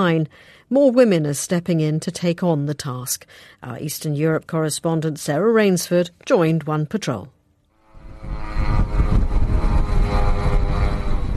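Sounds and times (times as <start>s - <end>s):
speech: 0.0s - 7.4s
droning engine buzz with rough propeller hum: 7.7s - 11.3s.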